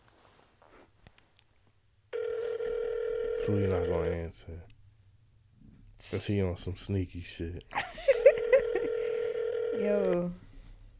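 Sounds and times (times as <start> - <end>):
steady electronic phone dialing tone: 2.2 - 4.2, 8.1 - 10.3
speech: 3.4 - 4.8, 6.0 - 8.1, 9.8 - 10.4
laughter: 7.7 - 9.1.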